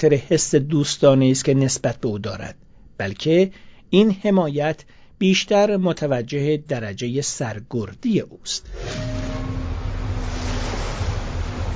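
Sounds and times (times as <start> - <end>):
speech: 0.0 - 9.2
low steady rumble: 8.6 - 11.7
gusty wind: 8.7 - 11.7
rough sea waves around a ship at anchor: 8.7 - 11.7.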